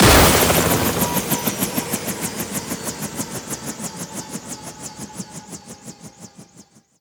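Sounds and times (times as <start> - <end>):
enemy SWAT helicopter attack video game sound: 0.0 - 3.6.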